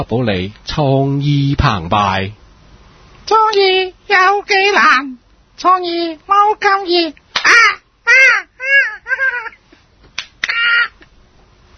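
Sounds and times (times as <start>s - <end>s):
speech: 0.0s - 2.4s, 3.3s - 7.8s
pet parrot squawking: 7.4s - 9.6s, 10.4s - 11.0s.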